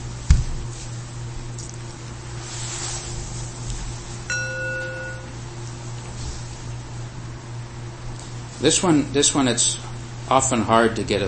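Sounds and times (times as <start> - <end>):
steady low hum: 0.0 - 11.2
small metal bell struck as a timekeeper bell: 4.3 - 5.4
speech: 8.6 - 11.2.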